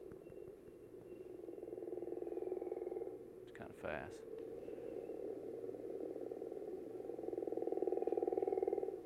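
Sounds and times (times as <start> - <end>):
gopher frog rapid rattling call: 1.4 - 3.2, 3.9 - 9.0
speech: 3.6 - 4.3.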